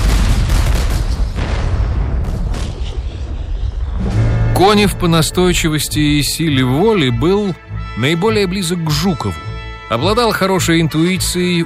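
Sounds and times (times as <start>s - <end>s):
celebratory artillery salute salvos booming: 0.0s - 4.6s
speech: 4.6s - 11.6s.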